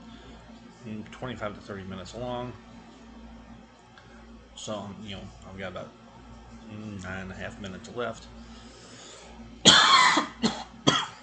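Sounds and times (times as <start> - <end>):
speech: 0.8 - 2.7, 4.6 - 6.0, 6.6 - 8.6
person coughing: 9.7 - 11.2.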